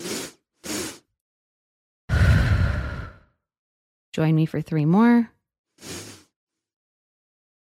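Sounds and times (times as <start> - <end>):
short sniffing inhales through the nose in a calming breathing exercise: 0.0 - 1.1, 5.8 - 6.4
speech: 4.2 - 6.1.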